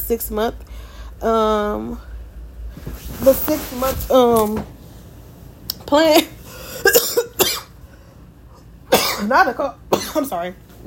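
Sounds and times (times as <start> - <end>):
speech: 0.1 - 2.1, 2.8 - 4.8, 5.9 - 6.4, 9.2 - 10.8
harsh raspy coughing fit from the flu: 6.6 - 7.7, 8.9 - 10.4.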